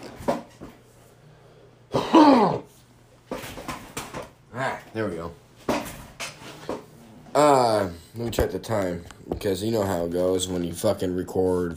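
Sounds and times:
person coughing: 1.9 - 2.7
person roughly clearing their throat: 1.9 - 2.7
speech: 5.0 - 5.4, 7.4 - 11.7.

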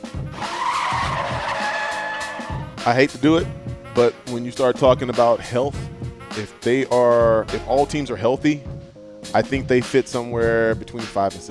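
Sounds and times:
car brakes screeching and tires skidding: 0.4 - 2.7
speech: 2.8 - 8.7, 9.3 - 11.4.

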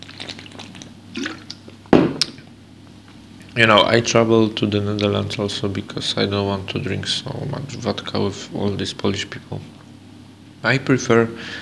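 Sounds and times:
person sipping water with wet clicks and slurps: 0.0 - 2.4
speech: 3.6 - 9.8, 10.6 - 11.6.

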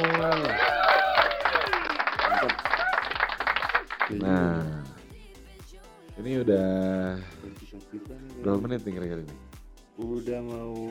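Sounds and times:
hands clapping: 0.0 - 4.3
speech: 4.1 - 4.8, 6.2 - 10.8.

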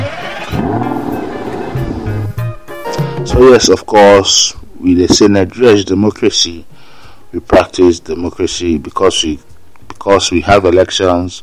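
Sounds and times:
car engine starting and revving: 0.0 - 2.4
speech: 3.2 - 6.7, 7.3 - 11.4.

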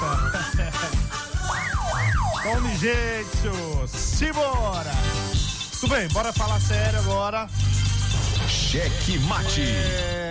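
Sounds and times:
laughter: 0.0 - 1.3
steady rhythmic beat with low thumping pulses: 0.0 - 10.2
wailing siren sound effect: 1.4 - 2.7
speech: 2.5 - 5.2, 5.8 - 7.8, 8.5 - 10.2.

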